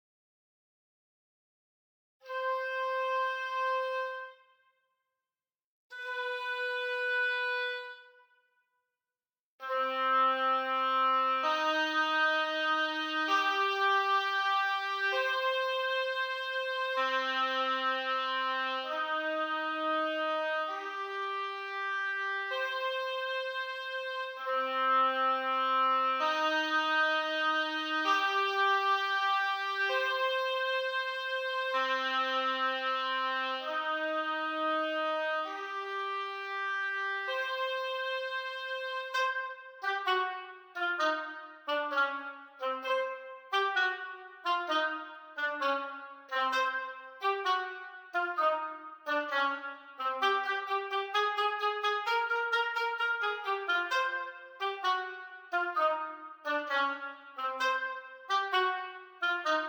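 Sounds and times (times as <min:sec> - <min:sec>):
orchestra oboe: 0:02.2 - 0:04.5, 0:05.9 - 0:08.2, 0:09.6 - 0:59.6.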